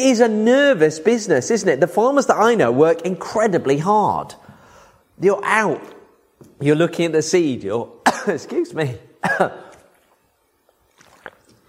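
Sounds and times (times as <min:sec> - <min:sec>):
speech: 0:00.0 - 0:04.4, 0:05.2 - 0:06.0, 0:06.6 - 0:09.6
speaker addressing an audience coughing: 0:08.0 - 0:08.6, 0:09.2 - 0:09.9.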